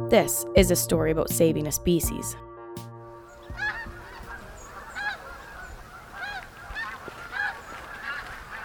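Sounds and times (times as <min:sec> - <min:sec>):
speech: 0:00.1 - 0:02.5
Canada geese honking in a chorus: 0:03.2 - 0:08.6.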